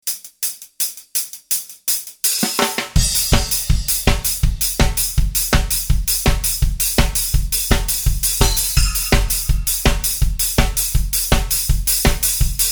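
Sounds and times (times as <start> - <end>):
ska beat: 0.0 - 12.7.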